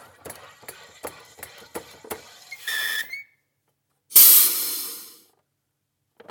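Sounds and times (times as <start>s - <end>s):
soda fizzing: 0.3s - 3.2s, 4.1s - 5.2s.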